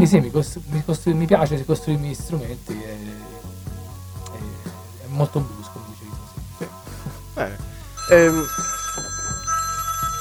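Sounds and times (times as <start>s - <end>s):
speech: 0.0s - 3.2s, 5.2s - 5.6s, 7.4s - 8.8s
phone ringing: 8.0s - 10.1s.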